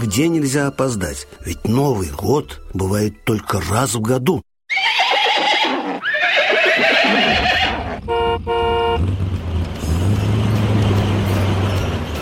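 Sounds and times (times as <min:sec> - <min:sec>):
speech: 0:00.0 - 0:04.4
troika of horses whinnying: 0:04.7 - 0:08.0
truck engine rumbling: 0:07.8 - 0:12.2
vehicle horn blast: 0:08.0 - 0:09.1.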